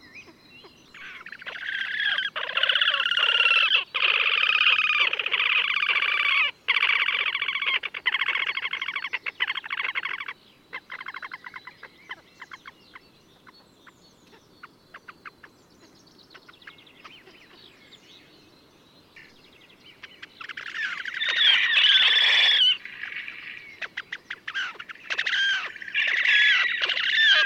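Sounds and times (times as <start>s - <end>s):
horned grebe calling: 0.0s - 13.6s, 19.2s - 27.4s.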